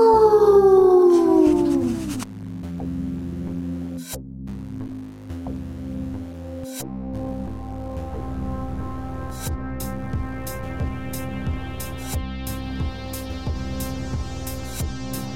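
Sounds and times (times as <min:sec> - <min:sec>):
people imitating werewolves with wolf-like howls: 0:00.0 - 0:02.2.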